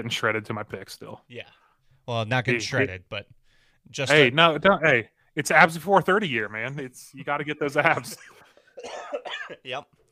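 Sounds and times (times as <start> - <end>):
speech: 0.0 - 10.0
short rough coughs: 8.0 - 9.8.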